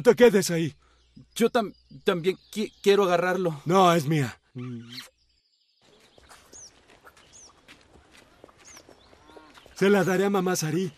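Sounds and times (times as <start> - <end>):
speech: 0.0 - 0.8, 1.4 - 5.1, 9.8 - 10.9
caught bird chirping: 0.0 - 10.9
scuffling footsteps outdoors: 5.8 - 10.3.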